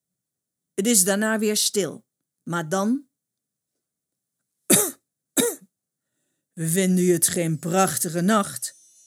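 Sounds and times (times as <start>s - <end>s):
speech: 0.8s - 3.1s, 6.6s - 8.8s
person coughing in a meadow on a hard-freezing moonlit night: 4.7s - 5.6s.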